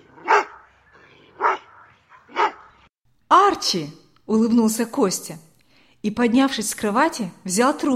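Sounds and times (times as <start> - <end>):
dog barking: 0.0 - 0.7, 1.3 - 2.8
speech: 3.5 - 7.9.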